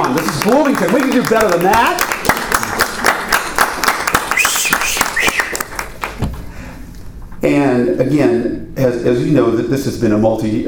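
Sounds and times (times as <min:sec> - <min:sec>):
audience applauding: 0:00.0 - 0:06.2
speech: 0:00.1 - 0:02.2, 0:07.4 - 0:10.6
whoop or whistle from the audience: 0:04.4 - 0:05.6.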